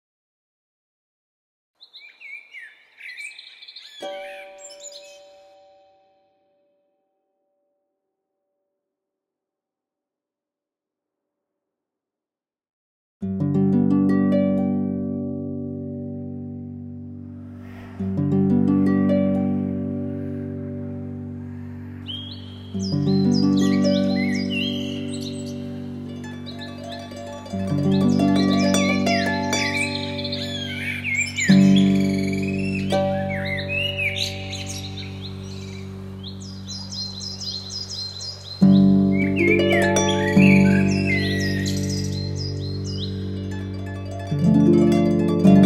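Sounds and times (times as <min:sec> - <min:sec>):
classic harp playing in G major, C minor and D minor: 0:03.9 - 0:06.4, 0:13.2 - 0:45.6.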